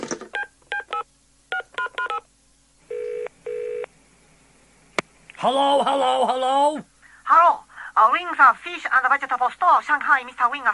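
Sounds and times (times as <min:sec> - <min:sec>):
touch-tone dialing beeps on a porcelain telephone: 0:00.4 - 0:02.2
speech: 0:05.4 - 0:10.7.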